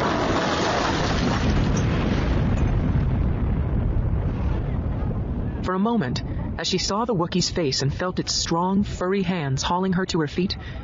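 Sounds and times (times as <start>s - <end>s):
explosion roaring and rumbling: 0.0s - 5.6s
speech: 5.7s - 10.8s.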